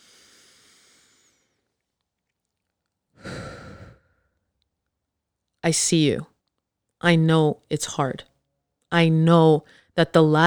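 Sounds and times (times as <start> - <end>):
breathy exhale: 0.0 - 1.6, 3.2 - 4.3
deep inhale: 0.0 - 1.7, 3.2 - 4.4
speech: 5.6 - 6.3, 7.0 - 8.3, 8.9 - 10.4.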